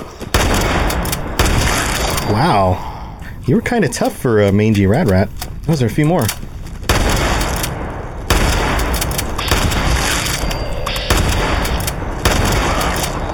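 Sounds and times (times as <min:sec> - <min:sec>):
video game gunfire aimed at a mangy rat creature: 0:00.1 - 0:02.2, 0:06.8 - 0:13.3
speech: 0:02.3 - 0:06.4.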